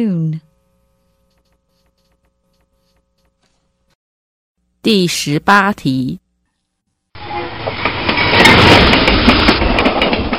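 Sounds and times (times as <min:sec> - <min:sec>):
speech: 0:00.0 - 0:00.5, 0:04.8 - 0:06.2
train rumbling on rails with clickety-clack: 0:07.2 - 0:10.3.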